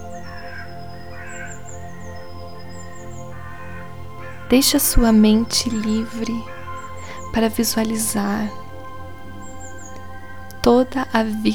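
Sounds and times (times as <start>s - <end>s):
small birds chirping and trilling: 0.0s - 11.5s
speech: 4.5s - 6.5s, 7.4s - 8.6s, 10.6s - 11.5s.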